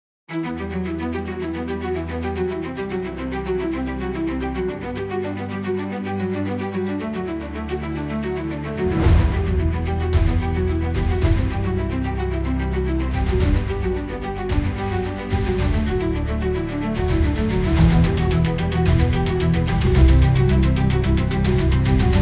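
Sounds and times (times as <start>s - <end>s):
synthwave music: 0.3s - 22.1s.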